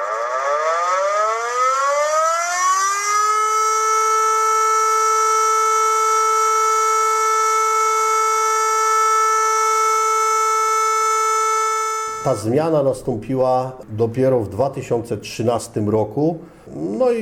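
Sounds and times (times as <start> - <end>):
civil defense siren all-clear signal: 0.0 - 12.5
speech: 12.3 - 17.1.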